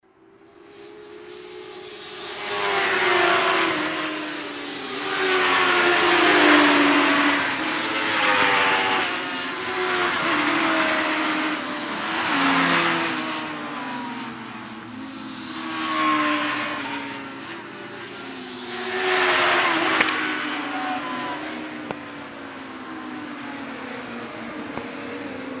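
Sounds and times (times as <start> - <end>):
ring racing motorcycles at the finish line: 0.0 - 25.5.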